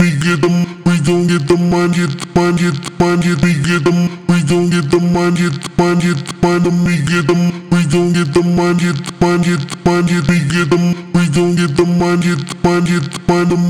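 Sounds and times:
vocal chop: 0.0s - 13.6s.

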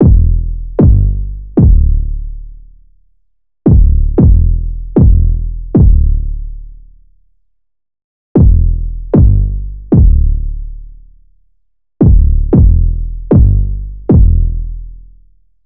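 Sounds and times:
808 loop in E minor at 135 BPM: 0.0s - 2.0s, 3.7s - 6.2s, 8.4s - 10.4s, 12.0s - 14.5s.

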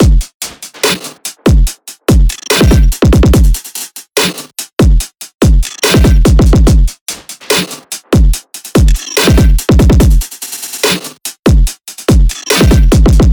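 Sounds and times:
full drum loop: 0.0s - 13.3s.

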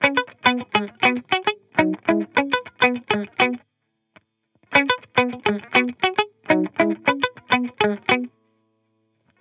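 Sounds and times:
pop guitar loop in C#m: 0.0s - 3.6s, 4.7s - 8.3s.

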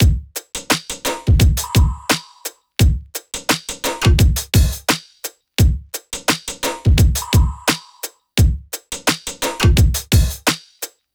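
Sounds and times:
full pop drum loop: 0.0s - 10.6s.

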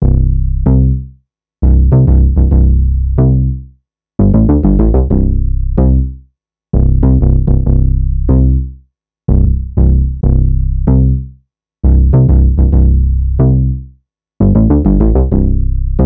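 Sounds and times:
synth bass loop in C: 0.0s - 1.0s, 1.6s - 3.6s, 4.2s - 6.1s, 6.8s - 8.7s, 9.3s - 11.2s, 11.8s - 13.8s, 14.4s - 16.0s.

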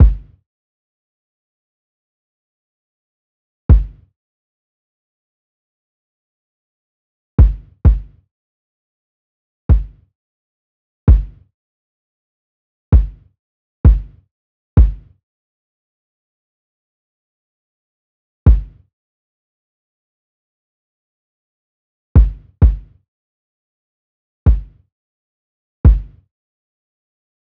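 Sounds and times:
kick drum loop: 0.0s - 0.3s, 3.7s - 4.0s, 7.4s - 8.1s, 9.7s - 10.0s, 11.1s - 11.3s, 13.9s - 14.1s, 14.8s - 15.1s, 18.5s - 18.8s, 22.2s - 22.8s, 24.5s - 24.8s, 25.9s - 26.1s.

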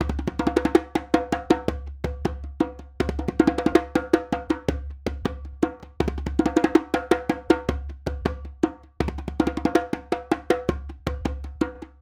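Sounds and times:
djembe percussion loop: 0.0s - 11.9s.

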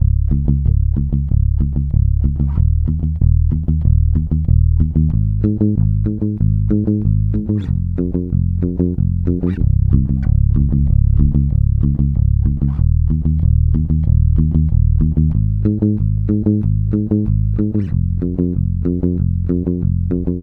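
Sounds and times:
electric bass loop in A flat at 94 bpm: 0.0s - 20.4s.

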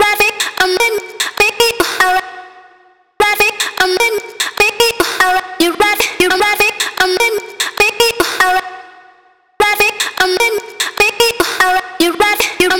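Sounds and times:
vocal chop in F sharp at 150 BPM: 0.0s - 2.2s, 3.4s - 8.6s, 9.8s - 12.7s.

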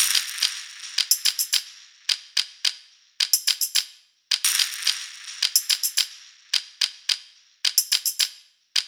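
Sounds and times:
pop percussion drum loop: 0.0s - 1.7s, 3.2s - 3.8s, 4.4s - 6.7s, 7.7s - 8.3s.

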